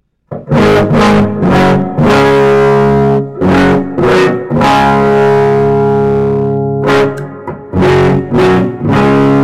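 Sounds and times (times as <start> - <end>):
heavily distorted electric guitar with humbucker pickups and lowered tuning through amp: 0.3 - 9.4.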